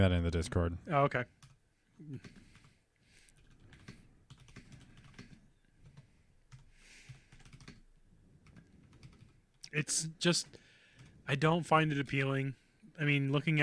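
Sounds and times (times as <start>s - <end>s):
speech: 0.0s - 2.4s, 9.7s - 10.6s, 11.3s - 13.6s
typing on a computer keyboard: 3.4s - 7.8s, 8.4s - 9.4s.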